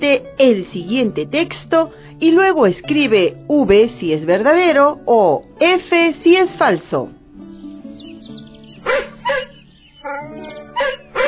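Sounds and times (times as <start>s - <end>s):
speech: 0.0s - 7.2s, 8.9s - 9.1s
dog barking: 8.8s - 11.2s.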